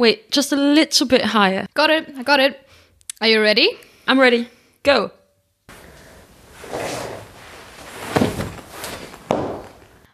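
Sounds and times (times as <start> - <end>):
speech: 0.0 - 5.2
shuffling and scraping of a chair: 5.7 - 10.0
heavy thud of a woman falling off a chair: 8.0 - 9.8.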